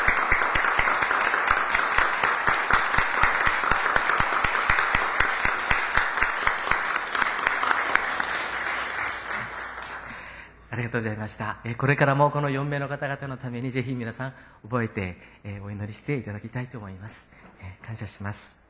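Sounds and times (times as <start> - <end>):
church congregation applauding: 0.0 - 10.4
speech: 10.9 - 18.6.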